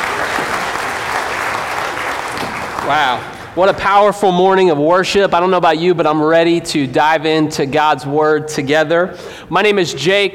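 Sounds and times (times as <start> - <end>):
audience applause for a church worship team: 0.0 - 3.6
speech: 2.9 - 10.3.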